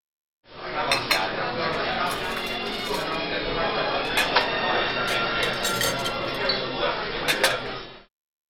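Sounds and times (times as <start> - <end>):
steady murmur of indistinct restaurant chatter: 0.6 - 7.9
sharp clinks of cutlery and dishes in a restaurant: 0.9 - 3.4, 4.0 - 6.6, 7.3 - 7.8.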